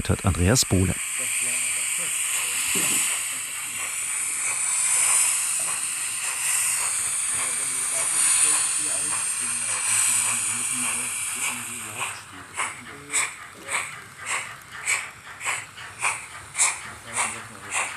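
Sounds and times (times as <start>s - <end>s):
speech: 0.0s - 1.1s
model steam locomotive sound chip hissing steam: 0.0s - 17.9s.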